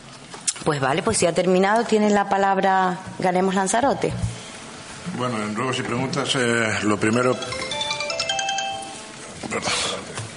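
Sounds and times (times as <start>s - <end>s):
noise: 0.0s - 10.3s
speech: 0.6s - 4.3s, 5.0s - 7.6s
mobile phone ringtone during a town council meeting: 7.1s - 9.2s.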